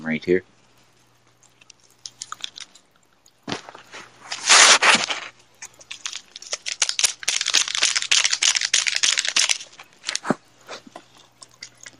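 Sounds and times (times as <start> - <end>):
speech: 0.1 - 0.5
plastic candy packet crinkling and crackling: 1.3 - 10.4
scissors cutting open a plastic candy packet: 4.3 - 10.3.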